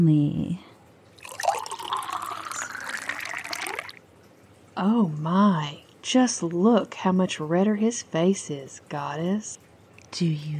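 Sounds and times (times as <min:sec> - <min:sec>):
speech: 0:00.0 - 0:00.6, 0:04.8 - 0:10.5
wine pouring into a glass: 0:01.2 - 0:04.0.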